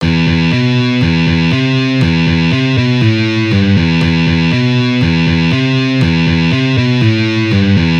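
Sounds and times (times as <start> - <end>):
easy guitar riffs: 0.0 - 7.9.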